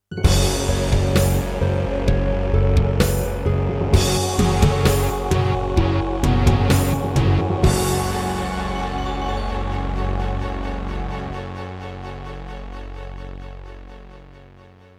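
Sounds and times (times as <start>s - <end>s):
Roland SC-88 synthesizer music: 0.2s - 14.7s.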